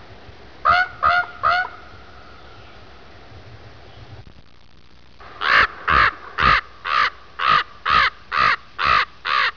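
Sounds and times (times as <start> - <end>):
common raven calling: 0.6 - 2.6, 5.2 - 9.5.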